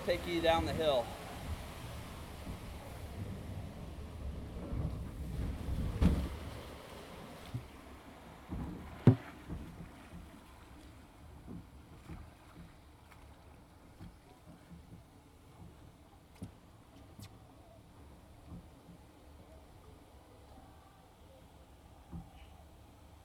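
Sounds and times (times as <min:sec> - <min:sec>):
speech: 0:00.0 - 0:01.2
log flume ride boat knocks and splashes: 0:00.0 - 0:03.6, 0:04.6 - 0:17.5, 0:18.2 - 0:19.2
log flume ride boat gliding through water: 0:00.0 - 0:23.2.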